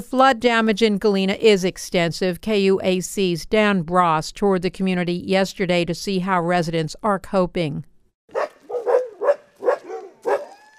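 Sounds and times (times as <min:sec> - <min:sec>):
speech: 0:00.0 - 0:07.9
dogs barking and yipping in a flooded dog yard: 0:08.3 - 0:10.7.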